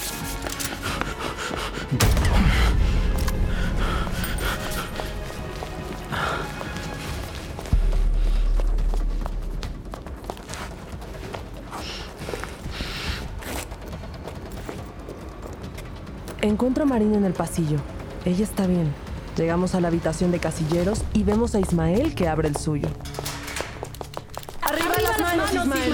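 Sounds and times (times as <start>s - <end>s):
heavy breathing: 0.7s - 9.1s, 11.6s - 13.7s
person running on foot: 3.3s - 16.4s, 20.8s - 25.9s
speech: 16.6s - 23.1s.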